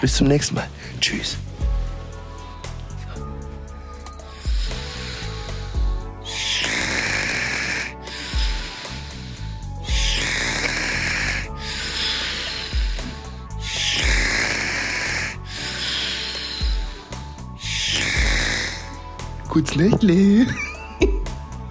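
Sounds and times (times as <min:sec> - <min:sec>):
speech: 0:00.0 - 0:01.5, 0:19.6 - 0:20.7
person snoring: 0:03.0 - 0:21.6.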